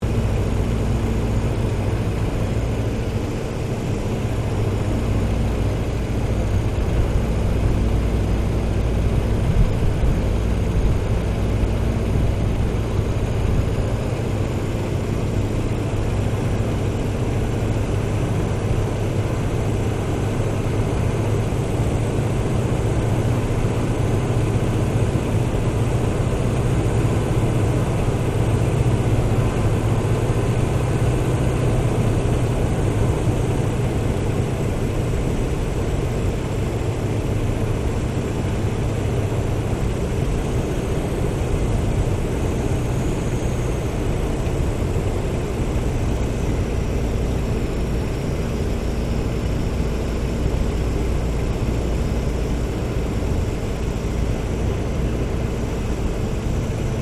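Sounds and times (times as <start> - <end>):
replica 1916 Sopwith Pup WW1 airplane flying, interior: 0.0 - 57.0.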